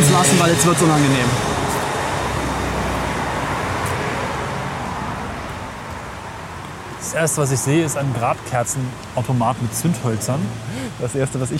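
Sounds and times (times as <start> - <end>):
road traffic roar of passing vehicles: 0.0 - 11.5
speech: 0.4 - 1.5, 7.1 - 11.5.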